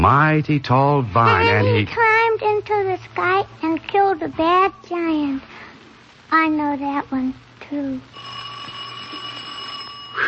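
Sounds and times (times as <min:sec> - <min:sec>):
speech: 0:00.0 - 0:05.7, 0:06.3 - 0:08.4
bell ringing: 0:08.2 - 0:10.2.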